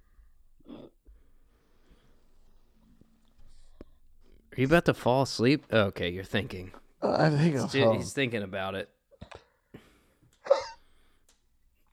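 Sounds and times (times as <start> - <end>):
speech: 4.6 - 9.4
hiccups: 10.4 - 10.9.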